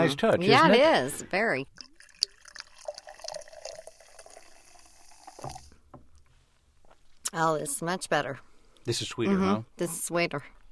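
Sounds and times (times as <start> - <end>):
speech: 0.0 - 1.8, 7.3 - 10.6
root beer soda pouring into a frosted glass mug: 1.8 - 5.8.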